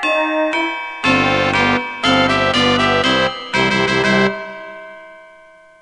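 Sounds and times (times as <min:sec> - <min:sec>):
opening tuba brass fanfare: 0:00.1 - 0:04.5.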